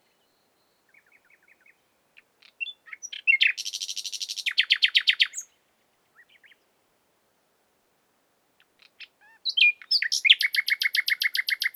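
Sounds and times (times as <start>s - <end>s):
common nightingale Luscinia megarhynchos song: 0.0s - 6.8s, 8.6s - 11.7s.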